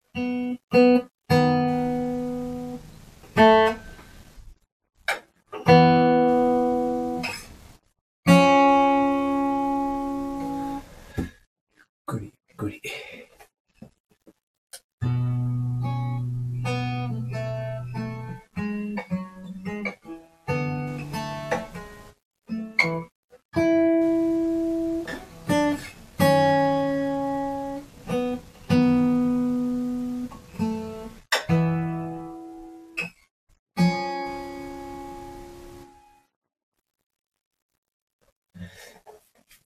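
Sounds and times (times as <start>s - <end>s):
solo fingerstyle acoustic guitar playing: 0.1s - 4.1s, 5.1s - 7.5s, 8.3s - 11.3s, 15.0s - 33.2s, 33.8s - 36.2s.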